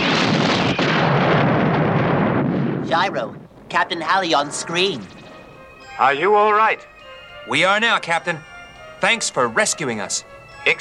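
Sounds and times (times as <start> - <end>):
laser torpedoes exploding in a space battle: 0.0 - 5.2
speech: 3.0 - 5.2, 6.0 - 10.7.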